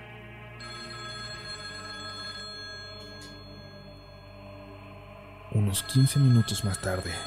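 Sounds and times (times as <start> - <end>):
telephone bell ringing: 0.6 - 4.8, 5.6 - 7.2
speech: 5.6 - 7.2.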